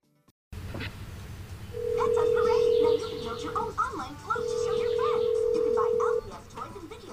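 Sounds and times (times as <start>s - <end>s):
busy noise: 1.5s - 7.1s
phone ringback tone of an unanswered call: 1.8s - 3.7s, 4.3s - 6.4s
voices: 1.9s - 7.1s.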